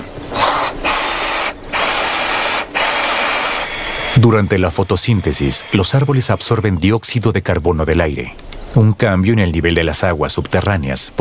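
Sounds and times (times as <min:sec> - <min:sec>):
power drill whirring: 0:00.3 - 0:06.7
speech: 0:04.2 - 0:11.1.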